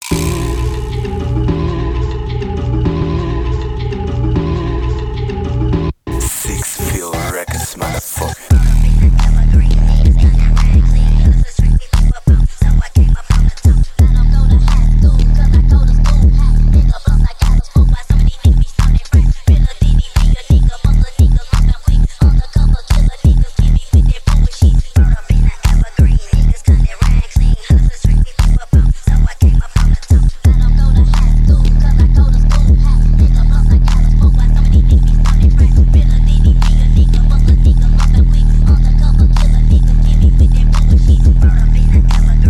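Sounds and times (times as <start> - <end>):
Japanese stutter phonk music: 0.0 - 42.4.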